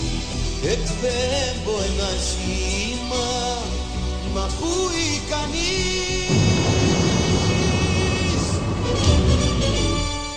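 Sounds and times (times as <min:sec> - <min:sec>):
music: 0:00.0 - 0:10.3
speech: 0:00.6 - 0:06.4
thunder rumbling: 0:06.3 - 0:10.3.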